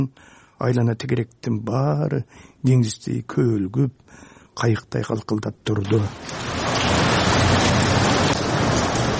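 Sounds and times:
speech: 0.0s - 6.8s
heavy rain pouring: 5.8s - 9.1s.

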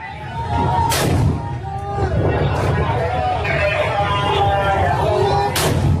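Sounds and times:
crowd noise: 0.0s - 5.9s
people shouting during street fighting: 0.0s - 5.9s
gunfire or shelling blasts in street fighting in Hodeidah, Yemen: 0.8s - 1.5s, 5.5s - 5.9s.

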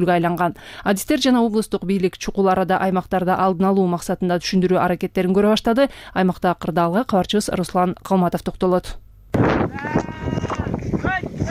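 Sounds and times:
speech: 0.0s - 10.0s
wind rumble: 9.4s - 11.5s
flock of sheep bleating while driven down to a lake to drink: 9.7s - 11.5s.

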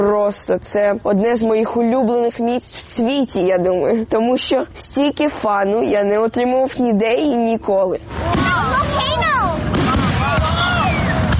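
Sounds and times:
speech: 0.0s - 8.6s
festive fireworks booming in Toronto: 8.1s - 11.3s
festive firework shells whistling in Toronto: 9.8s - 11.3s.

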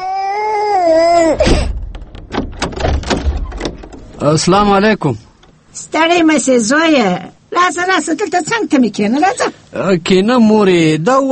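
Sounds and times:
baby crying in a wavering wail: 0.0s - 1.7s
scattered knocks and thumps: 1.1s - 5.6s
speech: 4.2s - 11.3s.

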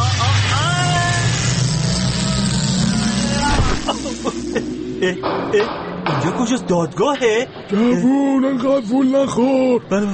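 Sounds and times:
time machine travel mechanical rumble and whoosh: 0.0s - 7.8s
warbling tones sweeping up and down: 0.0s - 7.8s
speech: 5.0s - 10.1s.

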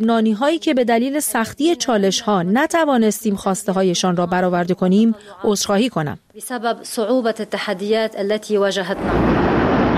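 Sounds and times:
speech: 0.0s - 9.5s
huge explosion of an ammonium nitrate warehouse in the port of Beirut: 9.0s - 9.9s.

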